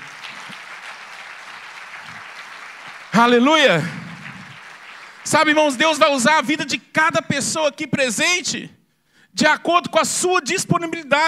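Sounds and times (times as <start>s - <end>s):
congregation applauding: 0.0s - 6.0s
speech: 3.2s - 4.0s, 5.2s - 11.2s.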